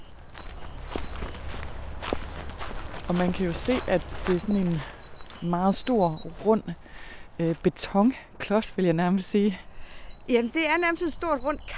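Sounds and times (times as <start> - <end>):
steady low outdoor rumble: 0.0 - 7.8
footsteps of people walking across a road beside a wastewater treatment plant: 0.0 - 11.7
speech: 3.1 - 9.7, 10.3 - 11.7.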